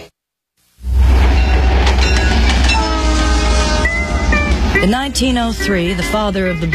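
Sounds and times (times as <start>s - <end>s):
loaded rail cars rumbling past with clattering: 0.9s - 6.7s
train whistle in sustained harmonic blasts: 1.4s - 6.7s
speech: 5.2s - 6.7s.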